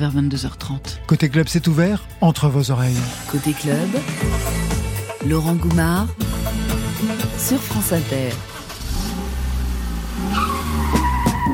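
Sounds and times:
speech: 0.0 - 6.2, 7.0 - 8.5
deep steady car engine rumble: 6.2 - 11.5
car tires screeching and skidding: 8.4 - 11.5.

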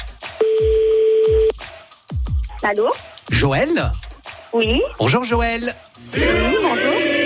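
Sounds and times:
telephone ringback tone on the line: 0.4 - 1.5
speech: 2.6 - 7.1.

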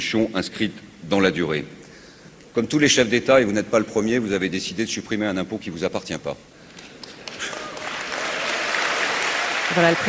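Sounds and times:
speech: 0.0 - 1.8, 2.6 - 6.6, 9.8 - 10.0
large audience at a mayors' association gathering applauding its president: 7.0 - 10.0.

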